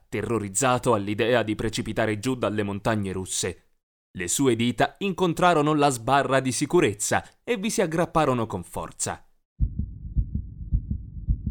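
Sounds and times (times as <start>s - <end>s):
speech: 0.1s - 3.6s, 4.2s - 9.2s
fast heartbeat thudding in lub-dub pairs: 9.6s - 11.5s.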